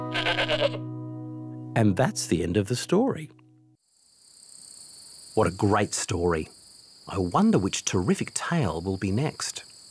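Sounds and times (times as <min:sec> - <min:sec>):
goat bleating: 0:00.1 - 0:00.8
speech: 0:00.2 - 0:00.9, 0:01.7 - 0:03.4, 0:05.3 - 0:06.5, 0:07.1 - 0:09.7.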